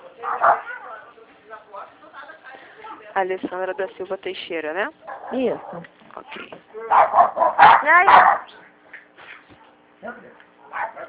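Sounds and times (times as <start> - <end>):
female dog barking and yelping: 0.2 - 0.9, 5.0 - 5.9, 6.9 - 8.6, 10.6 - 11.0
speech: 3.2 - 8.6.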